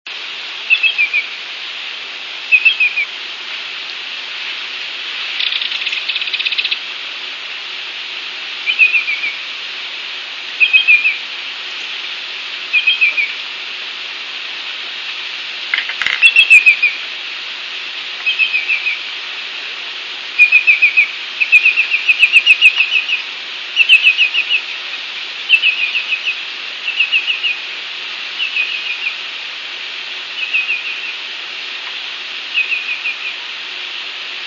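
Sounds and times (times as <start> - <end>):
Greater Yellowlegs singing: 0.6 - 1.4, 2.4 - 3.2, 5.1 - 6.9, 8.6 - 9.5, 10.5 - 13.8, 14.6 - 34.2.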